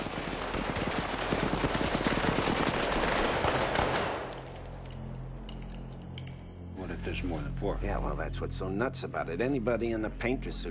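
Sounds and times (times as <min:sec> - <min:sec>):
automatic weapon gunfire in a film scene: 0:00.0 - 0:04.3
speech: 0:07.2 - 0:10.6.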